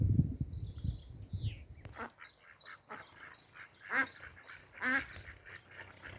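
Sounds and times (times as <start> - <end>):
soft outdoor noise: 0.0 - 6.1
duck quacking near a wildlife pond: 2.0 - 6.1.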